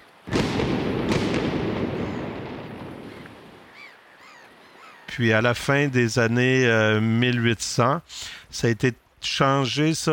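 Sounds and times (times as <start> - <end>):
cannon shot fired as fog signal at a lighthouse station: 0.3 - 3.7
long rumbling echo of cannon shot: 0.3 - 3.8
speech: 5.2 - 10.1.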